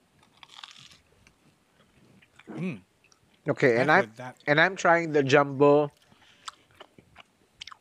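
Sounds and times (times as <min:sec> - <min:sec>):
chewing: 0:00.1 - 0:04.6, 0:05.9 - 0:07.7
crisp crunchy bite of potato: 0:00.2 - 0:01.1, 0:06.4 - 0:07.7
speech: 0:02.5 - 0:06.0.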